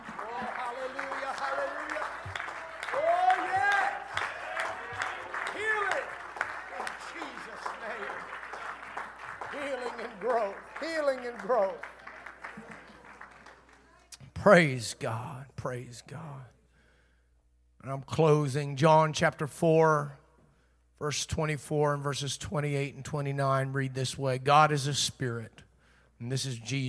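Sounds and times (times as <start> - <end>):
voices calling out and shouting praise: 0.0 - 8.7, 9.3 - 12.2
audience clapping hands: 0.0 - 14.2
speech: 14.4 - 16.5, 17.8 - 20.2, 21.0 - 25.6, 26.2 - 26.8.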